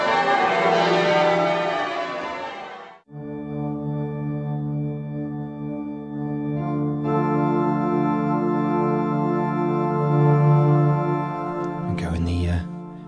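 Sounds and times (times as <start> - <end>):
rushing noise: 0.0 - 3.0
cathedral bells chiming: 0.0 - 13.0.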